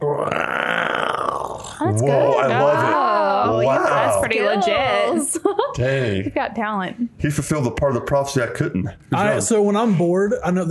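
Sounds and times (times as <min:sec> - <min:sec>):
voice imitating a turtle with a throaty gurgle: 0:00.0 - 0:02.8
speech: 0:01.9 - 0:10.6.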